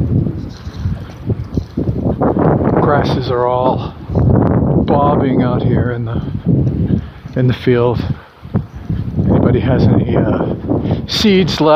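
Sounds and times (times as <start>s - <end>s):
flags flapping and snapping in strong wind: 0.0s - 2.8s
strong east wind roaring across an open field: 0.0s - 11.7s
speech: 3.1s - 4.0s, 4.9s - 6.7s, 7.4s - 8.2s, 9.5s - 11.7s.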